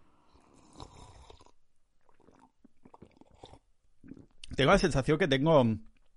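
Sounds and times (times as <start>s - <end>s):
person sipping water with slurps and gulping swallows: 0.2s - 4.6s
speech: 4.6s - 5.9s.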